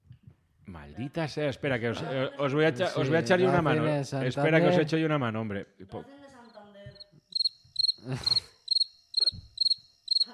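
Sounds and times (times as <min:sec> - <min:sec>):
speech: 0:00.7 - 0:06.2, 0:08.0 - 0:08.5
crickets chirping: 0:06.4 - 0:10.3.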